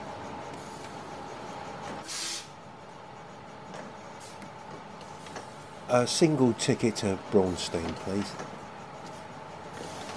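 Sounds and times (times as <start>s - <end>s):
large vehicle's engine idling: 0.0s - 10.1s
loud air hiss of bus air brakes releasing: 0.5s - 1.1s, 1.8s - 2.6s, 4.1s - 5.7s, 9.7s - 10.1s
speech: 5.9s - 8.6s.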